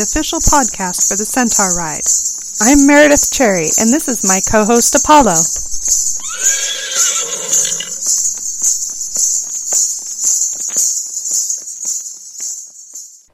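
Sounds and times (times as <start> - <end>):
speech: 0.0 - 6.1
hoof sounds: 0.0 - 13.3
shrill drone of insects: 0.0 - 13.3
horse neighing: 6.1 - 8.3.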